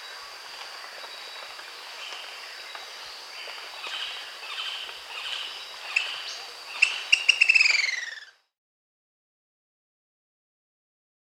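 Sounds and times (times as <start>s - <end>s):
steady insect-like hiss: 0.0s - 8.5s
long-crested pygmy-tyrant song in South America: 6.8s - 8.3s.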